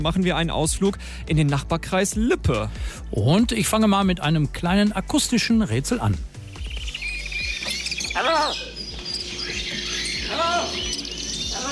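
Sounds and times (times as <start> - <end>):
speech: 0.0 - 6.3
many birds chirping and tweeting in a bird park: 6.0 - 11.6.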